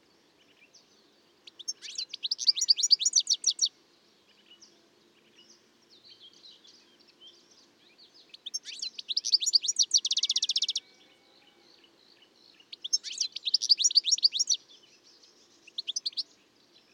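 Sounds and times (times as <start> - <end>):
European goldfinch singing twittering notes, Carduelis carduelis: 0.5 - 3.7, 5.4 - 10.8, 12.2 - 16.4.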